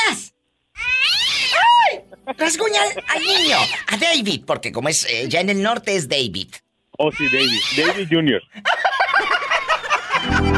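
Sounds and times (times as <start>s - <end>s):
kitten meowing: 0.8s - 1.7s, 7.1s - 8.0s
laughter: 2.0s - 3.9s, 7.9s - 10.5s
speech: 2.3s - 8.8s.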